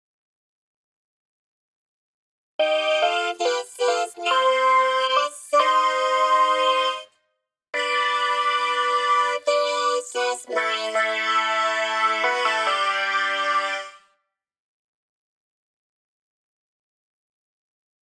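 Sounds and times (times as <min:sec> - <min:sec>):
vocoder voice: 0:03.0 - 0:07.0, 0:07.8 - 0:13.9.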